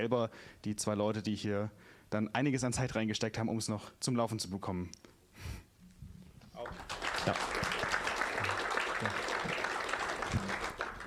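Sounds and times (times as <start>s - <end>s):
speech: 0.0s - 5.6s, 6.6s - 7.6s
applause from a large audience: 6.6s - 11.0s.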